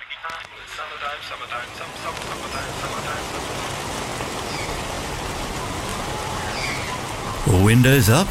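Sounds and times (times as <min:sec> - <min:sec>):
spring rain hissing and pattering: 0:00.0 - 0:08.2
speech: 0:00.2 - 0:03.9, 0:07.5 - 0:08.2.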